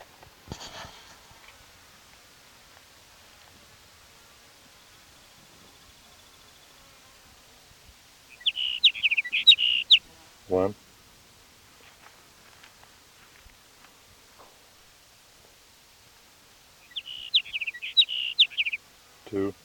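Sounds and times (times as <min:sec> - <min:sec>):
sage sparrow song: 0:08.3 - 0:10.1, 0:16.8 - 0:18.8
speech: 0:10.5 - 0:10.8.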